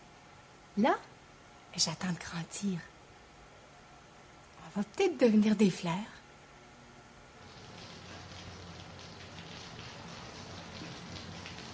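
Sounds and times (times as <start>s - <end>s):
speech: 0.8s - 1.1s, 1.7s - 2.9s, 4.7s - 6.2s
steady rain pattering on a surface: 7.4s - 11.7s.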